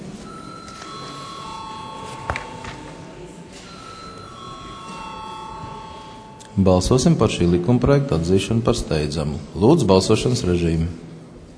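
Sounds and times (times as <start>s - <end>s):
low room murmur: 0.0s - 11.5s
parliament voting bell ringing with electronic tone: 0.2s - 7.5s
speech: 6.6s - 11.1s.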